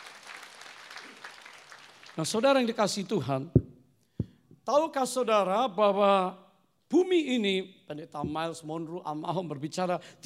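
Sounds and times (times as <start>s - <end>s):
audience applauding: 0.0s - 2.4s
speech: 2.2s - 3.6s, 4.7s - 10.2s.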